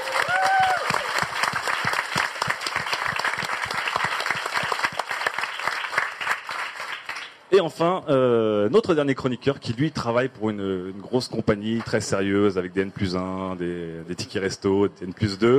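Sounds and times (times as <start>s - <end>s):
audience applause: 0.0s - 7.4s
speech: 7.6s - 15.5s.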